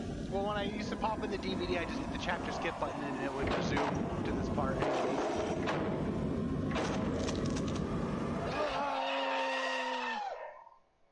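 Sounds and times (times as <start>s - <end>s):
speech: 0.4s - 6.0s
sharp bangs and thuds in a film soundtrack: 3.4s - 7.4s
loud sustained scream in a film soundtrack: 8.4s - 10.7s.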